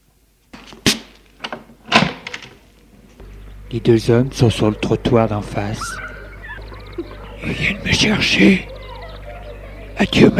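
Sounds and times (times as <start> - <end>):
low steady hum of outside ambience: 0.0 - 10.3
door latch click: 1.4 - 2.6
laughter: 3.4 - 10.3
speech: 3.7 - 6.0, 7.4 - 8.7, 10.0 - 10.3.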